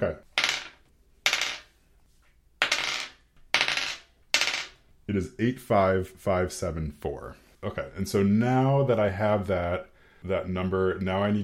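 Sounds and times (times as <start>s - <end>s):
speech: 0.0s - 0.3s, 5.1s - 11.4s
dice rattling and clattering across a hard surface: 0.3s - 1.7s, 2.6s - 4.8s.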